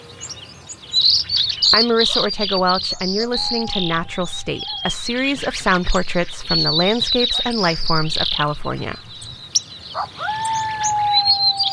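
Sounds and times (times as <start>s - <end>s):
early spring birds chirping at a desert spring oasis in Death Valley: 1.0s - 9.9s
faint high bird calls at a desert spring oasis in Death Valley: 1.0s - 11.7s
speech: 1.7s - 9.1s.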